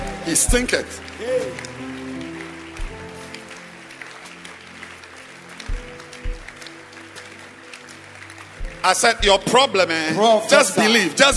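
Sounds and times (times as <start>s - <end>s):
audience clapping during a church service: 0.0s - 11.3s
low sustained musical tones: 0.0s - 11.3s
speech: 0.2s - 2.0s, 8.8s - 11.3s
heavy thumps: 5.7s - 6.6s.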